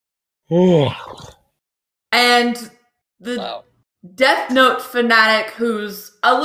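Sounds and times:
speech: 0:00.5 - 0:01.3, 0:02.1 - 0:06.4
person yawning: 0:00.5 - 0:01.4.

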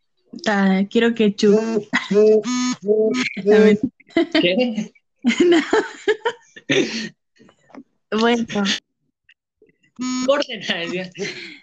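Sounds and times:
speech: 0:00.4 - 0:07.2, 0:08.1 - 0:08.8, 0:10.0 - 0:11.6
laughter: 0:01.9 - 0:07.1, 0:10.6 - 0:11.6
phone notification alert beeps: 0:10.0 - 0:11.0.

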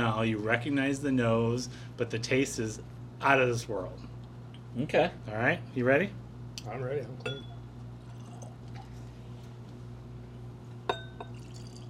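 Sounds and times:
speech: 0:00.0 - 0:04.1, 0:04.7 - 0:07.5
glass clinking: 0:07.2 - 0:08.6, 0:10.9 - 0:11.8
Scotch whisky trickling into a glass: 0:08.0 - 0:09.1, 0:10.9 - 0:11.8.

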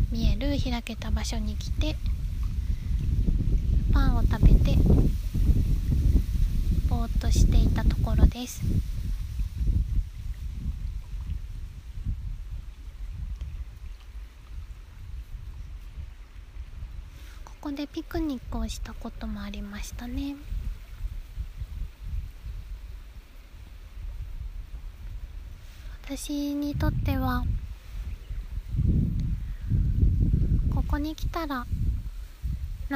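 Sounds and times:
Lake Shikaribetsu water lapping: 0:00.0 - 0:29.7
outdoor wind rumbling by Lake Shikaribetsu: 0:00.0 - 0:32.9
speech: 0:00.4 - 0:02.2, 0:04.0 - 0:05.2, 0:07.0 - 0:09.0, 0:17.8 - 0:20.6, 0:26.1 - 0:27.6, 0:30.9 - 0:31.8.

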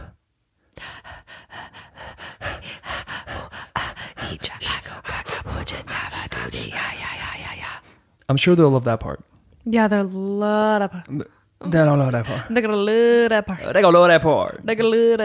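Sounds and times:
exaggerated heavy breathing with raspy panting: 0:00.0 - 0:08.1, 0:12.0 - 0:12.6
speech: 0:08.3 - 0:15.2.

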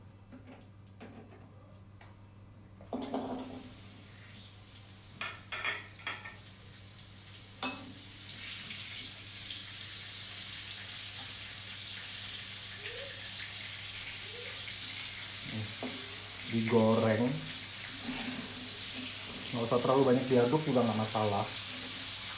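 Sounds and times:
chili, shallots and tomato frying in a pan over medium or low heat: 0:03.2 - 0:22.3
speech: 0:16.6 - 0:17.5, 0:19.6 - 0:21.6.

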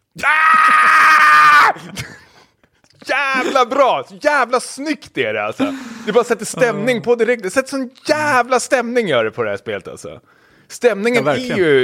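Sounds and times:
speech: 0:00.2 - 0:00.8, 0:03.6 - 0:11.8
person screaming in excitement: 0:00.2 - 0:01.9.

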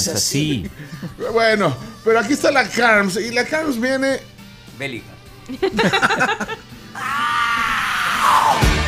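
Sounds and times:
speech: 0:00.0 - 0:07.2
laughter: 0:05.5 - 0:07.1
person screaming loudly: 0:07.0 - 0:08.7.

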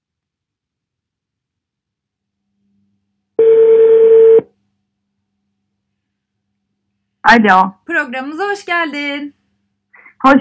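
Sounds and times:
telephone ringing tone while a call is placed: 0:03.4 - 0:04.4
speech: 0:07.3 - 0:09.4.

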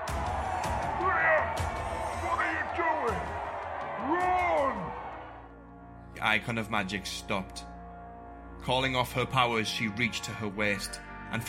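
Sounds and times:
crowd of cultists roaring and cheering in triumph: 0:00.0 - 0:05.8
speech: 0:06.2 - 0:07.7, 0:08.6 - 0:11.4.

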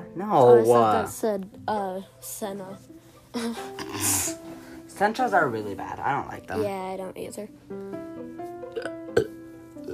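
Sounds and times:
speech: 0:00.2 - 0:08.0
short low burp: 0:03.8 - 0:04.4, 0:08.7 - 0:09.9.

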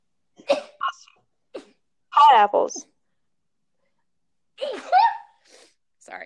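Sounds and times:
person sneezing loudly: 0:00.4 - 0:01.8, 0:04.6 - 0:05.8
speech: 0:02.3 - 0:02.9.

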